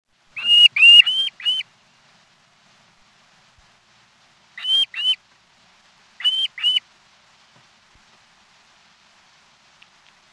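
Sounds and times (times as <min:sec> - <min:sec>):
long-billed curlew giving upslurred whistled calls: 0:00.4 - 0:01.6, 0:04.6 - 0:05.2, 0:06.2 - 0:06.8.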